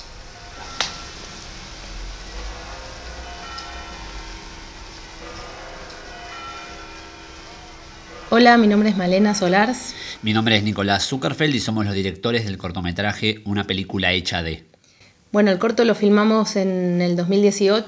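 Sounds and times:
faint sustained bell-like tones: 0.0s - 11.4s
steady rain in a cathedral square in Santiago de Compostela: 0.0s - 11.6s
speech: 8.3s - 14.7s, 15.3s - 17.8s.

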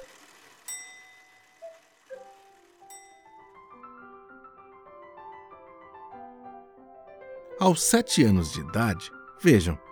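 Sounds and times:
clock chime melody of bell-like tones: 0.6s - 1.6s
speech: 7.6s - 9.9s.

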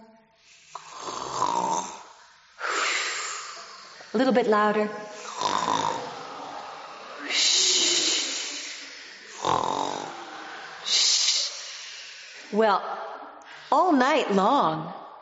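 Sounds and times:
hissing exhale: 0.4s - 4.2s, 5.1s - 12.6s
several people imitating snoring: 0.4s - 12.6s
speech: 4.1s - 5.0s, 12.5s - 13.0s, 13.7s - 15.0s.

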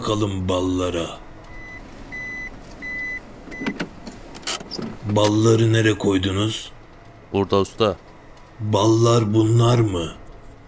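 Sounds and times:
speech: 0.1s - 1.3s, 4.8s - 8.0s, 8.6s - 10.6s
high electronic beeps of a truck reversing alarm: 1.5s - 3.7s.

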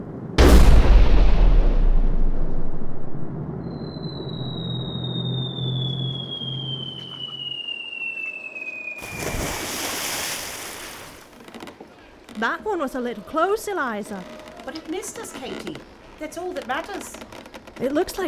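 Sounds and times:
ship's cannon firing in a sea battle: 0.4s - 3.8s
high whistling tone falling in pitch: 2.1s - 10.0s
speech: 12.4s - 18.2s.

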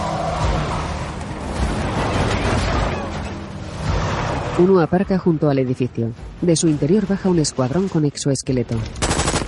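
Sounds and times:
heavy engines of trucks accelerating through a breach: 0.0s - 6.4s
speech: 4.6s - 9.3s.

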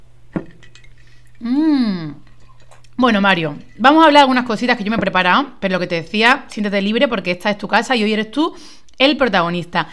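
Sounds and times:
ice clinking against a glass of vermouth during a toast: 0.4s - 1.2s
speech: 1.4s - 2.2s, 3.0s - 9.9s.

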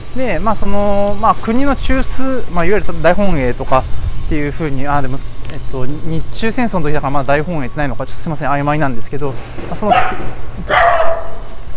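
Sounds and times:
speech: 0.2s - 11.0s
dog barking: 9.9s - 11.6s.

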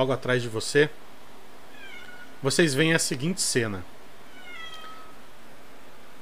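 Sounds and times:
speech: 0.0s - 1.0s, 2.4s - 3.9s
steady hiss of noise: 0.0s - 6.2s
kitten meowing: 1.7s - 2.4s, 4.3s - 5.2s.

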